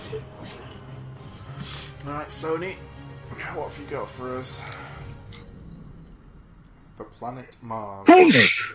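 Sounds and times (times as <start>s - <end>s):
speech: 0.1s - 0.4s, 2.0s - 4.8s, 7.0s - 8.7s
loud breathy sneeze: 8.1s - 8.7s.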